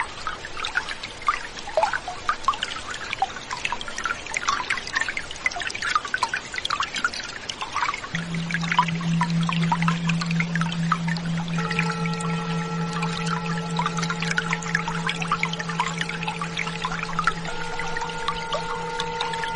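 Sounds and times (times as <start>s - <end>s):
stream splashing and trickling: 0.0s - 19.5s
singing bowl with low hum and ringing overtones: 8.1s - 19.5s.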